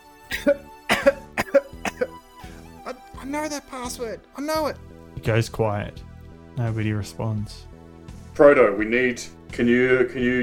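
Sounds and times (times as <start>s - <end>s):
person coughing harshly: 0.3s - 2.2s
speech: 0.4s - 0.7s, 3.3s - 7.7s, 8.4s - 10.4s.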